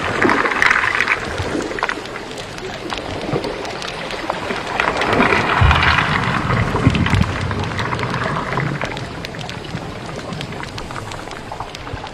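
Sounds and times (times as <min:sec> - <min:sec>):
deep-sea water flow: 0:00.0 - 0:12.1
fine crackling ticks and pops: 0:00.0 - 0:12.1.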